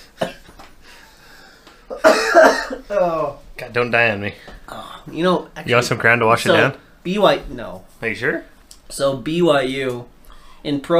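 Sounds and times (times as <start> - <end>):
person coughing while choking: 0.2 - 0.5, 1.9 - 3.0
quieter strained breathing: 0.8 - 1.9, 10.2 - 10.7
speech: 2.9 - 10.9.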